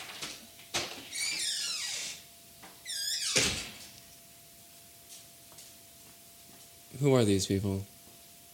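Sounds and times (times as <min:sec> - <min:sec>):
door squeaking and creaking as it swings: 0:00.8 - 0:02.2, 0:02.8 - 0:03.8
speech: 0:07.0 - 0:07.9.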